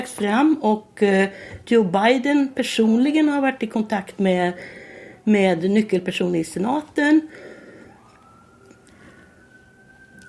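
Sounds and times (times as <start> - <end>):
speech: 0.0 - 7.5
emergency vehicle siren wailing in Washington: 7.2 - 10.2.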